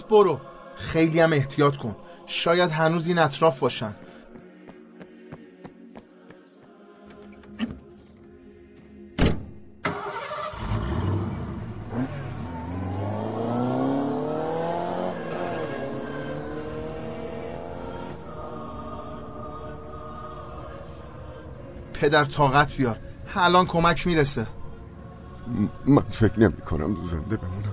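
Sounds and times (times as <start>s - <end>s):
speech: 0.1s - 4.1s, 22.1s - 24.6s, 25.5s - 27.7s
car door thud: 9.2s - 9.6s
car engine starting and driving off: 9.8s - 23.0s.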